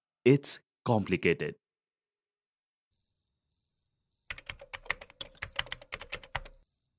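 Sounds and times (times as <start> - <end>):
speech: 0.2 - 1.6
clicks of typing on a keyboard or phone screen: 4.3 - 6.7.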